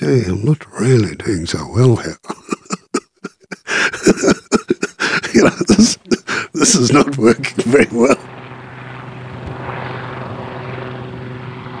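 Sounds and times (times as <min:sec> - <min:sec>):
speech: 0:00.0 - 0:02.3, 0:05.4 - 0:08.4
laughter: 0:02.0 - 0:08.2
helicopter flying overhead: 0:03.8 - 0:11.7.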